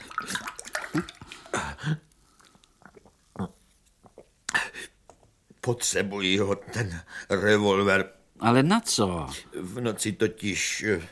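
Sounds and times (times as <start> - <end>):
water pouring into a glass: 0.0 - 1.6
speech: 1.0 - 1.2, 5.7 - 11.0.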